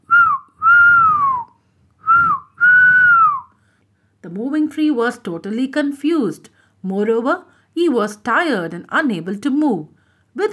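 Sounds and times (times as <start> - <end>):
person whistling a short tune: 0.0 - 3.6
speech: 4.4 - 10.5.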